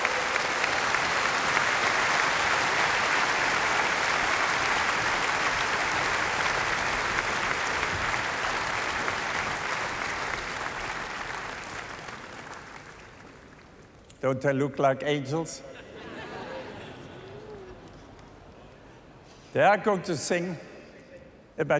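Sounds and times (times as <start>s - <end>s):
large audience applauding: 0.0s - 13.9s, 16.0s - 18.6s
speech: 14.2s - 15.7s, 19.6s - 20.7s, 21.6s - 21.7s
laughter: 15.6s - 19.3s.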